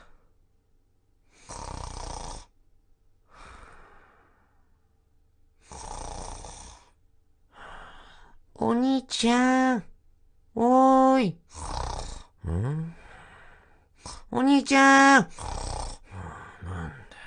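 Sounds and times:
performer imitating snoring in a comedic storytelling performance: 1.3 - 2.5, 5.6 - 6.9, 10.8 - 13.1, 14.0 - 17.2
speech: 8.6 - 9.9, 10.6 - 11.7, 12.5 - 13.0, 14.3 - 15.5.

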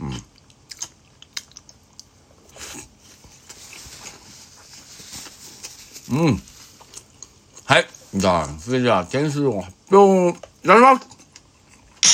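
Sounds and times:
person chewing and eating food: 0.0 - 3.9, 6.6 - 8.6, 11.1 - 12.0
speech: 6.1 - 6.5, 7.7 - 11.1.

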